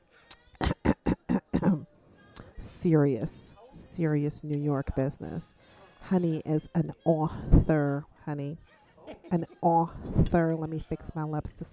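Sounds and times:
person clearing throat loudly in a New York department store: 0.6s - 1.9s
speech: 2.8s - 11.7s
laughter: 8.6s - 11.6s.

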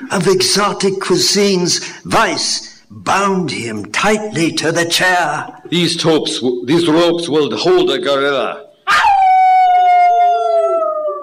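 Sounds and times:
speech: 0.1s - 9.1s
animal howl from the jungle at night: 8.9s - 11.2s.

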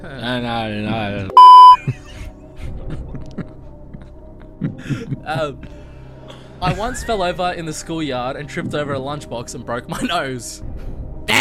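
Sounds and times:
speech: 0.2s - 2.0s, 4.8s - 5.8s, 6.6s - 10.7s
game show buzzer beep: 1.4s - 1.8s.

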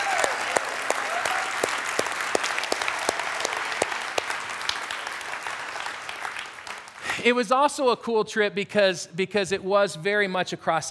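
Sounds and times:
room full of people applauding: 0.0s - 7.2s
speech: 7.2s - 10.8s.

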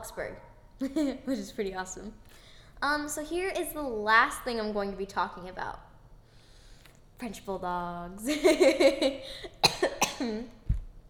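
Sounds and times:
speech: 0.1s - 5.9s, 7.2s - 10.6s
person coughing with a throaty rasping edge: 9.5s - 10.5s.

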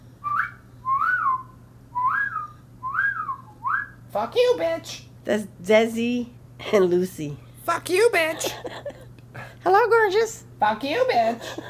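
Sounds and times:
faint low hum: 0.0s - 11.6s
person whistling to a pet blue parakeet: 0.2s - 4.0s
speech: 4.2s - 8.9s, 9.6s - 11.6s.

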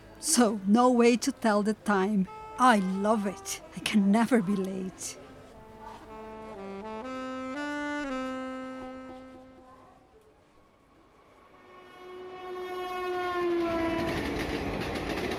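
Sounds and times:
speech: 0.2s - 5.2s
train horn blasts: 2.2s - 4.0s, 5.2s - 9.8s, 11.6s - 14.4s
train rolling by on railway tracks: 11.0s - 15.3s
clatter of passing train cars: 13.1s - 15.3s.

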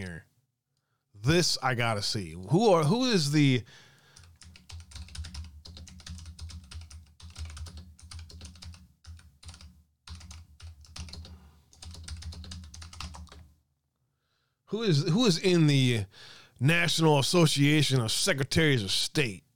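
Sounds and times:
speech: 0.0s - 0.3s, 1.2s - 3.9s, 14.7s - 19.4s
rapid typing on a computer keyboard entering a web address: 4.2s - 13.5s.

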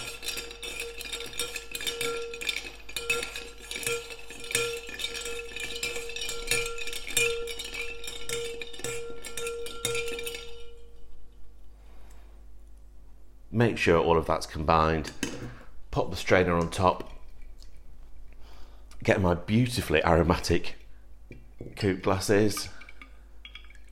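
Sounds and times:
ice clinking as a cocktail is stirred in a shaker: 0.0s - 10.7s
speech: 13.6s - 15.3s, 16.0s - 17.1s, 19.1s - 20.8s, 21.8s - 22.8s.

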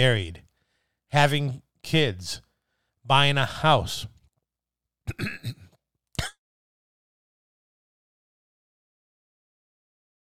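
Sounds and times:
speech: 0.0s - 0.4s, 1.1s - 2.4s, 3.1s - 4.1s, 5.1s - 5.6s
person clearing throat: 5.1s - 6.4s
person coughing: 5.1s - 6.4s.

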